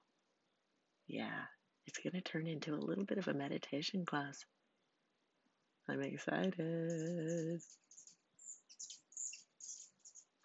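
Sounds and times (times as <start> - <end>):
speech: 1.1 - 4.6, 5.9 - 7.8
birds chirping: 5.9 - 10.4.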